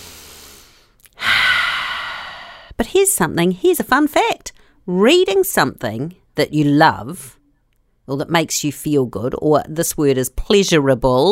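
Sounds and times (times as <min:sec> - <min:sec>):
deep breathing: 0:00.0 - 0:02.8
speech: 0:02.8 - 0:07.4, 0:08.1 - 0:11.3.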